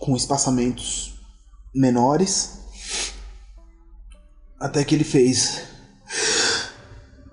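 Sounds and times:
speech: 0:00.0 - 0:03.2, 0:04.6 - 0:06.2
person imitating a man's final breath with a long slow exhale: 0:06.1 - 0:06.9.

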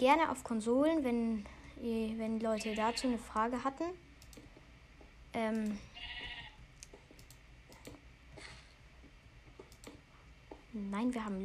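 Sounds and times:
speech: 0:00.0 - 0:04.1, 0:05.3 - 0:06.2, 0:10.8 - 0:11.4
light clicks: 0:04.2 - 0:04.5, 0:06.8 - 0:08.0, 0:09.6 - 0:10.0
sheep bleating in a video game cave: 0:06.0 - 0:06.6.

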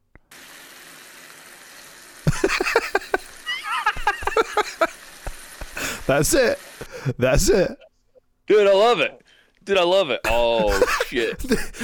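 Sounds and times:
burgers sizzling in a frying pan: 0:00.3 - 0:07.0
laughter: 0:02.3 - 0:05.0, 0:10.3 - 0:11.8
speech: 0:06.1 - 0:07.8, 0:08.5 - 0:11.8.

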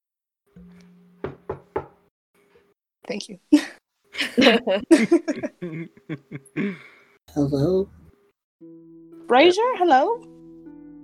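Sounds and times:
sharp knocks on a door: 0:01.2 - 0:02.0
speech: 0:03.1 - 0:03.8, 0:04.4 - 0:08.0, 0:09.3 - 0:10.3
laughter: 0:04.2 - 0:06.9.

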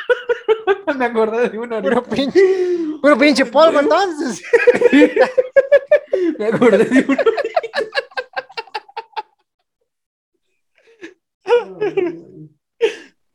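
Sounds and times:
speech: 0:00.5 - 0:07.5
rapid rhythmic laughter: 0:03.6 - 0:09.4.

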